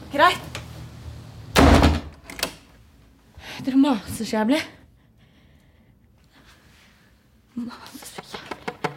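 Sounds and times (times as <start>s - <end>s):
speech: 0.1s - 0.5s, 3.6s - 4.8s
door shutting with a loud thump as someone leaves: 1.6s - 2.2s.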